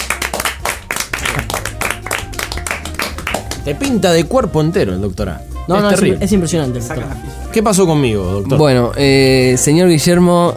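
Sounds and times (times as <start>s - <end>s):
studio audience applause: 0.0s - 3.9s
speech: 3.6s - 10.5s.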